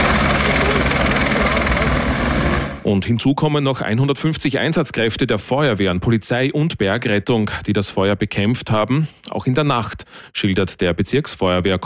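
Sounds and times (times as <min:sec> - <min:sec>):
firefighting helicopter flying during a forest fire: 0:00.0 - 0:02.9
speech: 0:02.9 - 0:11.8.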